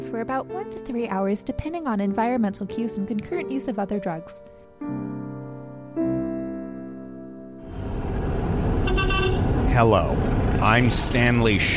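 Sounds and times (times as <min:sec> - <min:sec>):
speech: 0:00.1 - 0:05.2, 0:09.8 - 0:11.7
busy traffic with engines rumbling: 0:07.7 - 0:11.7
horns beeping in traffic: 0:08.6 - 0:10.0
long car horn blasts: 0:08.8 - 0:09.6.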